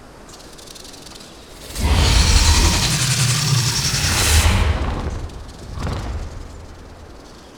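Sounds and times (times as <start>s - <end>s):
young creature roaring: 1.5s - 7.0s.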